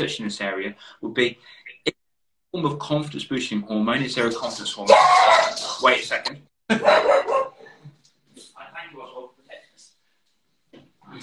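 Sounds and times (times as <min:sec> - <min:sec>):
speech: 0:00.0 - 0:07.3
dog barking in the room: 0:06.7 - 0:07.8.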